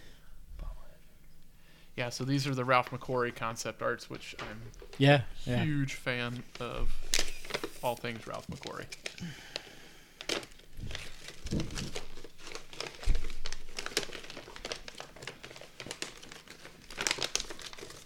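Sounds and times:
speech: 2.0 - 7.2, 7.8 - 9.6
wrapping paper crinkling as gift is unwrapped: 6.1 - 18.0.

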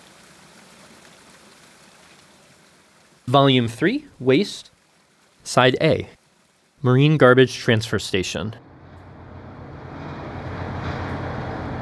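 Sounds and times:
water rushing from a pipe over riprap: 0.0 - 8.5
speech: 3.3 - 4.7, 5.5 - 6.2, 6.8 - 8.7.

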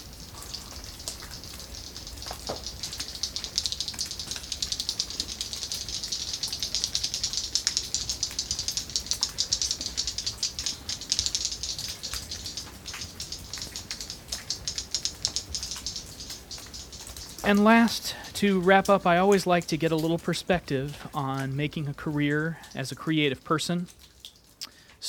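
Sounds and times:
cave-dwelling swifts echolocation clicks inside a cave in Samoa: 0.0 - 21.4
speech: 17.5 - 24.0.

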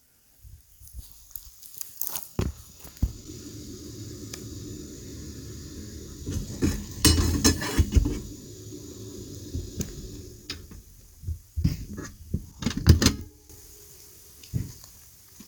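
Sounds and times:
camp stove hissing while heating water for tea: 2.6 - 11.2, 12.8 - 15.0
rain patter: 3.0 - 11.3.

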